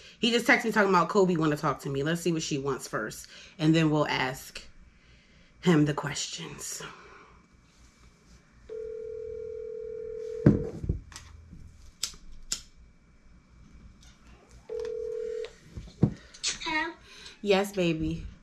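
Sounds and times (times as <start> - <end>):
speech: 0.2 - 4.7, 5.6 - 7.0, 16.7 - 18.3
ringback tone of an outgoing phone call: 8.7 - 10.7, 14.7 - 15.6.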